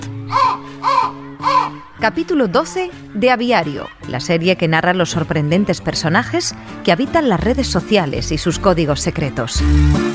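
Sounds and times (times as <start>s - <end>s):
crow cawing: 0.1s - 4.0s
speech: 2.0s - 10.1s.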